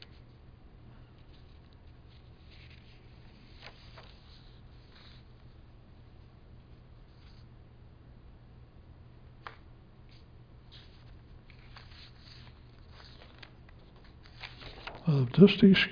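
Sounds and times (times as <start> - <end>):
paper pages being shuffled and rearranged: 1.2 - 5.6, 9.4 - 15.1
sharper paper crinkles and taps: 11.5 - 15.1
speech: 15.2 - 15.8.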